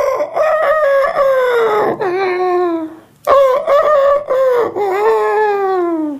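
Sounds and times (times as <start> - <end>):
person imitating rooster crowing: 0.0 - 6.1.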